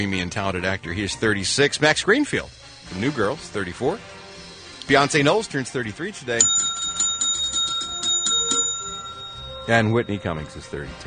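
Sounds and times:
speech: 0:00.0 - 0:04.2, 0:04.9 - 0:06.7, 0:09.6 - 0:11.0
bells ringing: 0:06.4 - 0:11.0.

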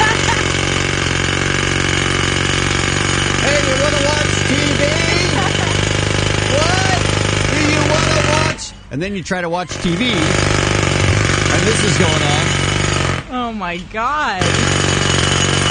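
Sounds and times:
laughter: 0:00.0 - 0:00.8, 0:04.6 - 0:06.7
jackhammer breaking pavement: 0:00.0 - 0:08.6, 0:09.6 - 0:13.4, 0:14.4 - 0:15.7
speech: 0:09.0 - 0:10.6, 0:11.5 - 0:12.6, 0:13.4 - 0:14.8.

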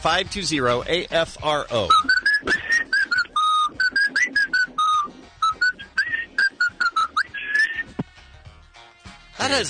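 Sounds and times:
speech: 0:00.0 - 0:02.6, 0:09.5 - 0:09.6
whistled melody on an answering machine: 0:01.8 - 0:08.0.

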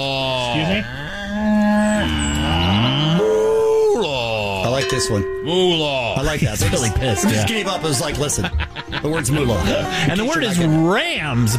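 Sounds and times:
speech: 0:00.0 - 0:01.6, 0:04.9 - 0:11.5
cow mooing: 0:00.3 - 0:04.6
laughter: 0:06.3 - 0:11.4.

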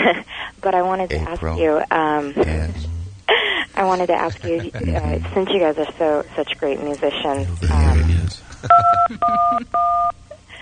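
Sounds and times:
speech: 0:00.1 - 0:02.9, 0:03.8 - 0:10.2
laughter: 0:02.4 - 0:05.4, 0:08.4 - 0:10.4
telephone keypad two-note beeps: 0:08.8 - 0:10.2.

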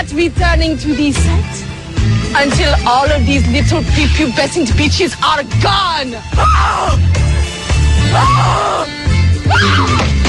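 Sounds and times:
speech: 0:00.1 - 0:07.3, 0:08.1 - 0:10.2
woman screaming after falling down: 0:06.4 - 0:07.0, 0:08.1 - 0:10.1.

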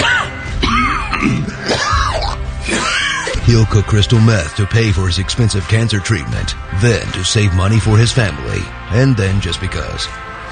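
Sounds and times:
person clearing throat: 0:00.0 - 0:03.4
person coughing: 0:00.0 - 0:03.4
speech: 0:03.5 - 0:10.3.

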